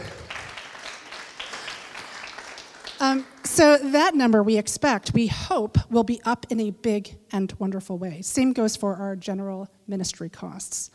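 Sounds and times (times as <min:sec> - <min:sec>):
room full of people applauding: 0:00.0 - 0:03.5
speech: 0:03.0 - 0:10.9.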